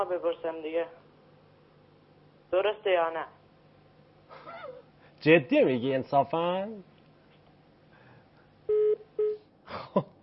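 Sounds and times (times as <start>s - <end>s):
speech: 0.0s - 1.1s, 2.5s - 3.4s, 4.7s - 6.9s, 9.7s - 10.1s
two steady electronic phone-line tones: 8.7s - 9.4s.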